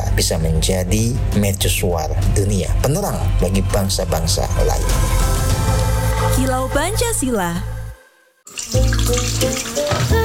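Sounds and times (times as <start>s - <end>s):
speech: 0.2s - 5.3s, 6.3s - 7.8s, 8.7s - 10.2s
tap water running into a sink while dishes are washed: 8.5s - 10.2s.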